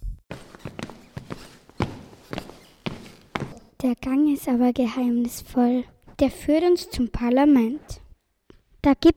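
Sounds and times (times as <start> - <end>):
hard heel footsteps walking into a parliament building: 0.3 - 3.8
speech: 3.8 - 8.0, 8.8 - 9.1.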